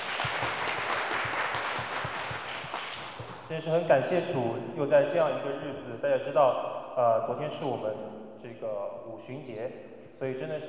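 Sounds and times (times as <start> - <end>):
church audience applause welcoming a guest pastor: 0.0 - 3.5
speech: 3.5 - 10.6.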